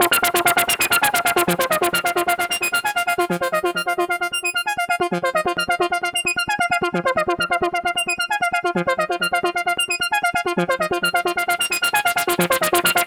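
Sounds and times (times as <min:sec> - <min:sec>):
synth arpeggio: 0:00.0 - 0:13.0.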